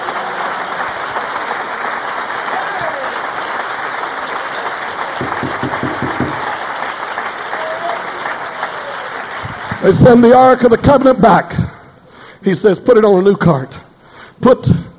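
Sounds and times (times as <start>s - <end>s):
audience clapping hands in sustained dense applause: 0.0s - 10.6s
speech: 9.8s - 11.6s, 12.4s - 13.8s, 14.4s - 14.8s.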